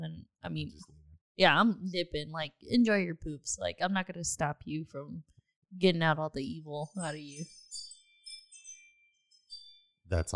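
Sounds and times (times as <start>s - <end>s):
speech: 0.4s - 7.9s, 10.1s - 10.3s
soft high-pitched chime ringing: 6.9s - 9.9s.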